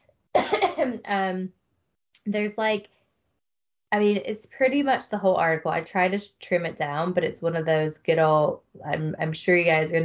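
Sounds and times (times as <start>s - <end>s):
person coughing harshly: 0.4s - 1.0s
speech: 0.8s - 1.6s, 2.2s - 3.0s, 3.9s - 10.0s.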